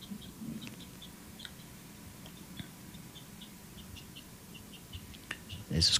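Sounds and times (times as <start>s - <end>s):
faint bird-like high chirps: 0.0s - 5.9s
quiet hissy background: 0.0s - 5.9s
speech: 5.8s - 5.9s.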